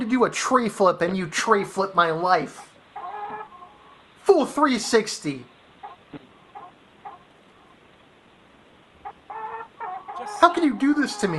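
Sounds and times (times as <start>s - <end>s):
speech: 0.2s - 2.7s, 4.3s - 5.5s, 10.4s - 11.3s
chicken clucking: 2.6s - 4.0s, 5.8s - 7.8s, 9.0s - 11.3s.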